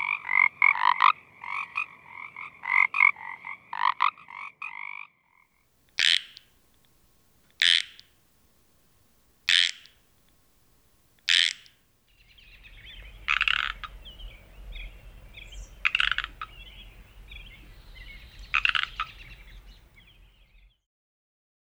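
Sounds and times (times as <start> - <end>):
Pacific tree frog croaking: 0.0 - 8.7, 9.3 - 10.4, 11.2 - 11.8, 13.3 - 14.0, 15.8 - 16.6, 18.5 - 19.2.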